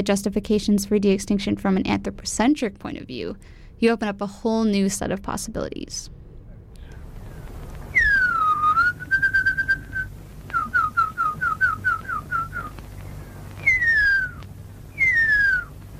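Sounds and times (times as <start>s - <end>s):
speech: 0.0s - 6.2s
person whistling an imitation of the huia call: 7.9s - 12.8s, 13.6s - 14.4s, 15.0s - 15.8s.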